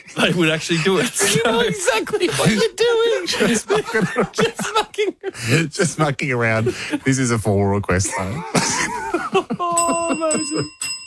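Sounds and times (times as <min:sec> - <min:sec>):
people laughing: 0:00.0 - 0:07.1, 0:08.0 - 0:10.8
speech: 0:00.1 - 0:11.0
bicycle-style bell ringing: 0:09.8 - 0:11.0.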